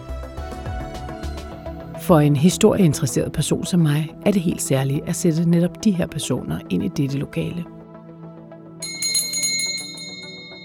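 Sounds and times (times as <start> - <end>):
speech: 2.1 - 7.8
small golden hand bell ringing: 8.8 - 10.6.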